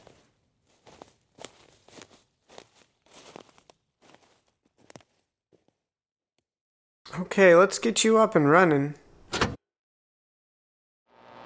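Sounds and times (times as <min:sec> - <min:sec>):
speech: 0:07.2 - 0:09.0
back door opening with clunk and rattle: 0:09.2 - 0:09.6.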